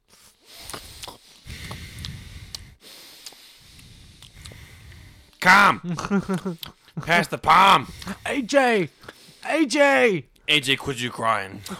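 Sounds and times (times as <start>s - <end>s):
man vocally imitating eating with snorts and sniffs: 0.0s - 5.4s, 7.9s - 9.5s
speech: 5.4s - 11.7s.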